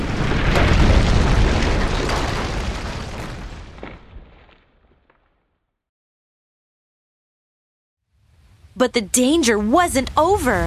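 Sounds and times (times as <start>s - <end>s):
massive avalanche of rushing snow in the mountains: 0.0s - 5.1s
deep booming cannon blast triggering a snow avalanche: 0.0s - 5.6s
speech: 8.8s - 10.6s.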